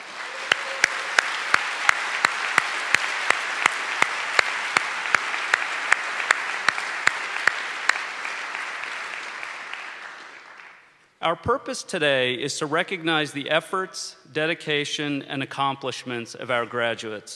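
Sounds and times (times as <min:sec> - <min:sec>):
large audience applause: 0:00.0 - 0:10.9
speech: 0:11.3 - 0:17.3.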